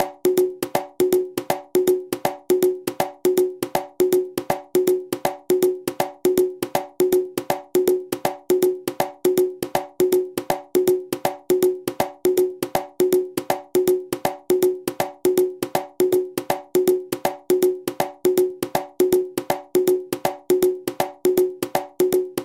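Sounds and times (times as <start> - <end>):
columbia habana repicador drum: 0.0 - 22.4.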